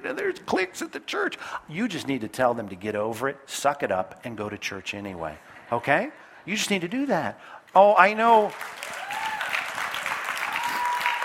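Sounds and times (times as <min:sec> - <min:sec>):
speech: 0:00.0 - 0:09.0
audience applause: 0:08.5 - 0:11.2.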